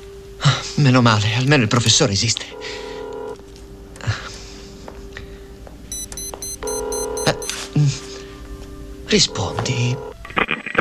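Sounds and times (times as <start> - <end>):
speech: 0.6 - 2.9, 9.1 - 10.1
electronic telephone tones as a number is dialed: 2.4 - 3.4, 5.9 - 7.6, 9.2 - 10.2.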